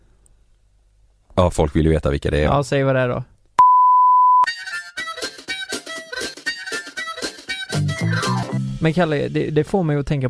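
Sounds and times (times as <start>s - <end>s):
speech: 1.4s - 3.3s, 8.8s - 10.2s
censor bleep: 3.6s - 4.5s.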